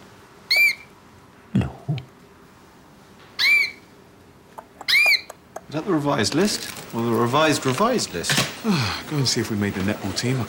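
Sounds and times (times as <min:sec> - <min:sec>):
small caged bird with shrill squawking chirps: 0:00.5 - 0:00.9, 0:03.4 - 0:03.9, 0:04.6 - 0:05.7
speech: 0:05.7 - 0:10.4.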